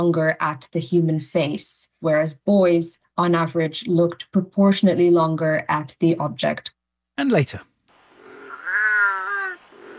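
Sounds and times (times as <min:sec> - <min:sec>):
speech: 0:00.0 - 0:07.7
wild cat yowling: 0:08.2 - 0:09.9.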